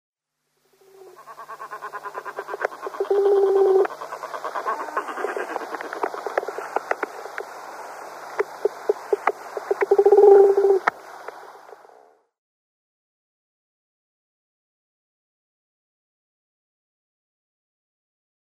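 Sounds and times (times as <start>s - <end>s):
Grey-headed Albatross: 0.8s - 7.6s, 8.4s - 11.5s.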